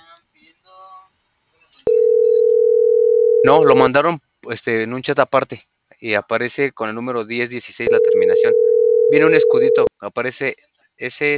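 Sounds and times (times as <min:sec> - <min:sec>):
steady telephone tone while a number is redialed: 0:01.9 - 0:03.8, 0:07.9 - 0:09.9
speech: 0:03.4 - 0:11.3.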